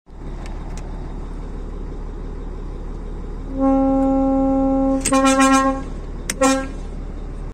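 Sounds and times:
Volvo 500 car horn: 3.5 - 6.9.

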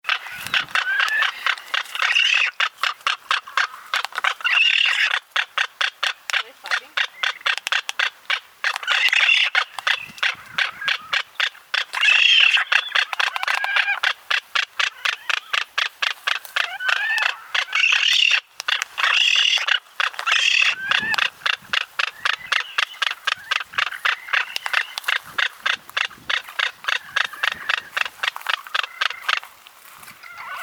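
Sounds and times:
frigatebird call: 0.0 - 30.6.

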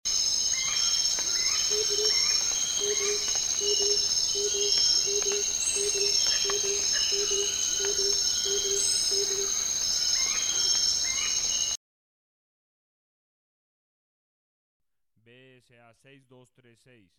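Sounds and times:
gilded barbet: 0.1 - 11.8.

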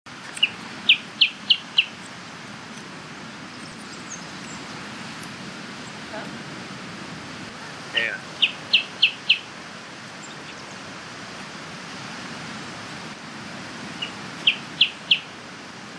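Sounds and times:
band-tailed hornero: 0.1 - 11.0, 13.8 - 15.5.

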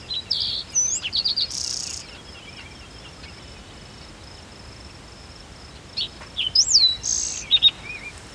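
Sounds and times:
green-tailed towhee calling: 0.1 - 2.2, 6.0 - 8.2.

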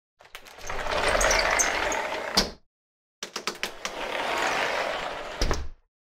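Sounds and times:
sliding door: 0.4 - 2.5, 3.6 - 5.7.

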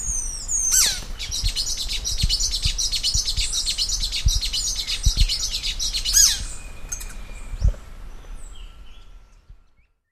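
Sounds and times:
magpie tanager calling: 0.0 - 7.2.

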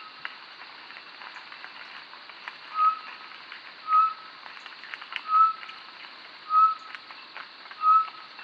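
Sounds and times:
short-tailed batis whistles: 2.7 - 3.1, 3.8 - 4.3, 5.2 - 5.6, 6.5 - 6.9, 7.8 - 8.2.

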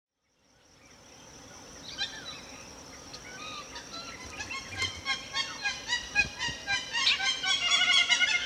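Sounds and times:
hamerkop calling repeated yelps: 3.4 - 8.4.

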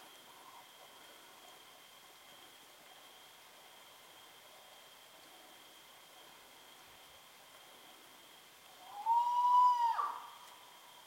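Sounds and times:
spot-bellied eagle-owl whistled wail: 8.8 - 10.4.

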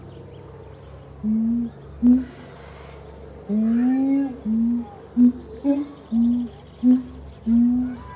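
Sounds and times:
soft background hum: 0.0 - 8.1
speech: 1.2 - 2.2
siamang calling in low tonal hoots: 1.2 - 2.5, 3.4 - 8.1.

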